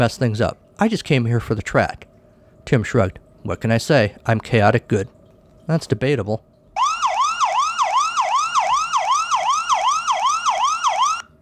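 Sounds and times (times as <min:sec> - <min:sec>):
speech: 0:00.0 - 0:06.5
police siren wailing in a fast yelp: 0:06.8 - 0:11.4.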